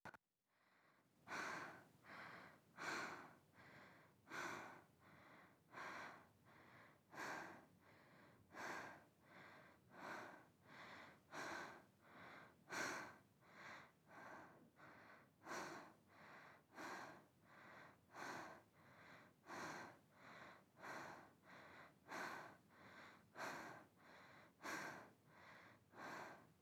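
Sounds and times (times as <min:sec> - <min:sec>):
fast breathing: 0:01.3 - 0:26.6.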